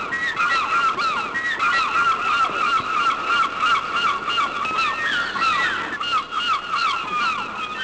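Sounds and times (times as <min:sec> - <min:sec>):
seagulls calling: 0:00.0 - 0:07.8.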